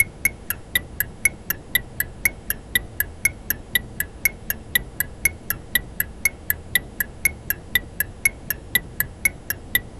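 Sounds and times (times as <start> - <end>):
music box with crisp metallic ticking: 0.0 - 9.9.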